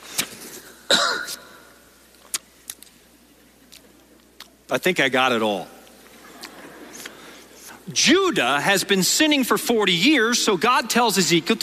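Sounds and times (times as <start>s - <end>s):
person coughing: 0.8s - 1.6s
speech: 4.7s - 5.8s, 7.9s - 11.6s.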